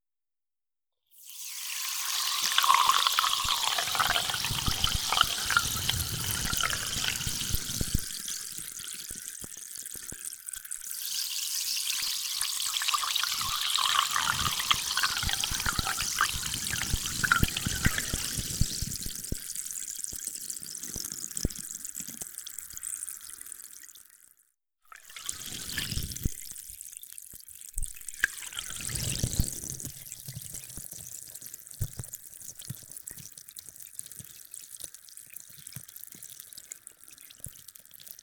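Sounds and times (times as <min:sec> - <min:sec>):
coarse-bubbled carbonated water pouring for rinsing: 0:01.2 - 0:09.3, 0:10.7 - 0:19.6, 0:24.9 - 0:26.4, 0:28.0 - 0:29.9.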